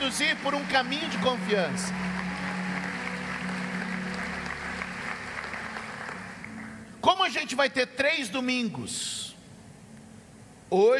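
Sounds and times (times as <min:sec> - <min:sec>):
large audience applauding at a church service: 0:00.0 - 0:06.9
speech: 0:00.1 - 0:02.2, 0:07.5 - 0:09.2, 0:10.7 - 0:10.9.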